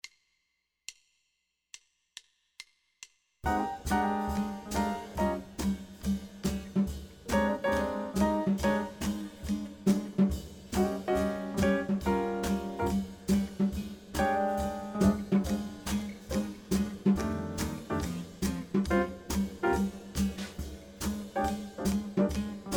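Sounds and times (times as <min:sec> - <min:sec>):
blues bass line: 0:03.4 - 0:22.7.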